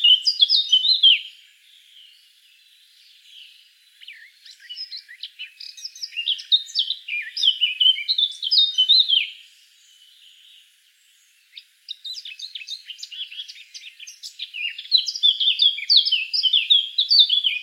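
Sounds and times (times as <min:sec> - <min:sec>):
Eurasian blackcap Sylvia atricapilla singing: 0:00.0 - 0:17.6.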